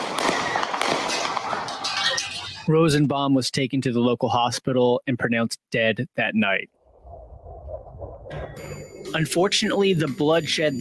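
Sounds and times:
gunshots fired near parked cars: 0.0 - 1.9
speech: 2.7 - 6.8, 9.1 - 10.8.

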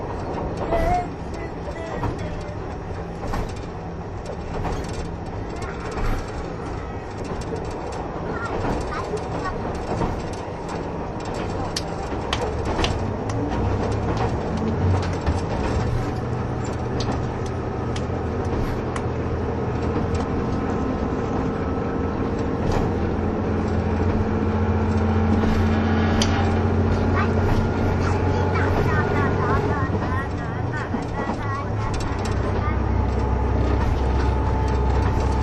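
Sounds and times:
brief voices on a diesel train: 0.0 - 15.0, 24.8 - 35.4
diesel train running, onboard engine drone: 0.0 - 35.4
faint rattles on a diesel train: 0.0 - 35.4.

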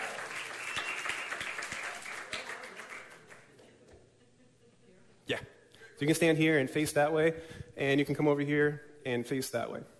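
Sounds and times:
audience applauding: 0.0 - 3.6
sharp claps: 0.0 - 3.6
speech: 5.3 - 9.9.

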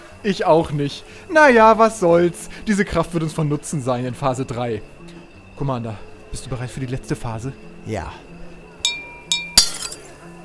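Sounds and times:
speech: 0.2 - 5.0, 5.6 - 8.3
fork tapping a glass: 8.9 - 10.0
glass shattering: 8.9 - 10.1.

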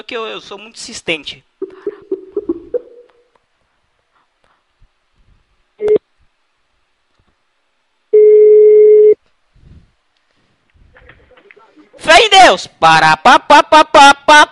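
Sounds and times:
speech: 0.0 - 1.5, 11.9 - 14.5
telephone call tone on a prank call to a hotel: 8.2 - 9.2.

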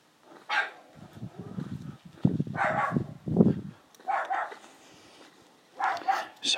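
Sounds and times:
dog barking and growling: 0.5 - 1.6, 2.5 - 3.2, 4.0 - 4.6, 5.8 - 6.4.

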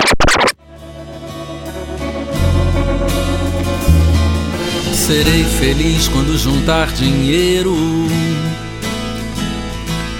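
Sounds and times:
instrumental song with steady bass line and sustained chords: 0.7 - 10.1
speech: 5.1 - 8.6.

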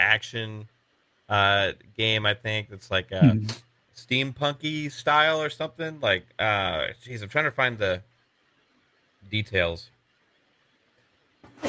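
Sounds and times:
speech: 0.1 - 8.1, 9.2 - 9.9
human sneeze: 3.2 - 3.6.

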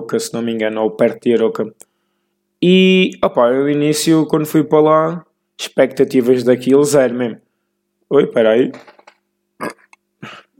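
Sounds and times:
speech: 0.1 - 1.9, 2.6 - 7.4, 8.1 - 9.0
short throaty burps: 9.6 - 10.5.

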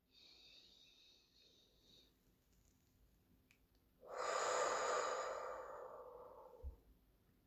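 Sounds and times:
slow calm breath with long soft exhale: 0.0 - 2.2, 4.0 - 6.8.

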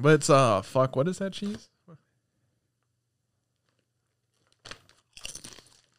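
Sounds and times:
speech: 0.0 - 1.7
someone biting into crispy ridged sour cream and onion potato chips: 4.3 - 5.9.

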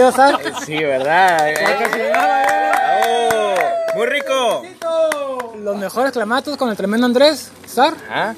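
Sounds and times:
laughter: 0.0 - 2.2
speech: 0.0 - 3.4, 5.6 - 8.3
studio audience applauding: 1.1 - 5.5
person cheering: 1.6 - 5.4.

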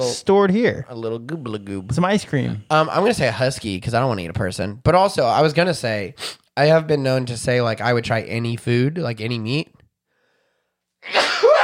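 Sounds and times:
speech: 0.0 - 9.8, 11.0 - 11.6
loud forceful sneeze with a rising vocal squeal: 11.0 - 11.6.

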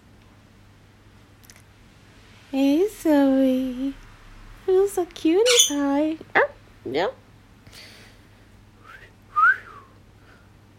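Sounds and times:
speech: 2.5 - 3.6, 5.2 - 7.2
pet bird whistling: 5.4 - 5.8.

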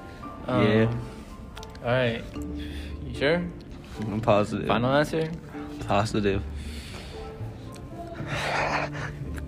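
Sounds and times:
faint murmuring: 0.0 - 9.4
speech: 0.5 - 1.2, 1.8 - 6.8
heavy breathing into a microphone: 6.4 - 9.4.

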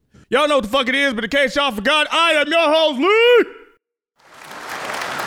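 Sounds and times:
speech: 0.3 - 3.6
applause from a group: 4.2 - 5.2.

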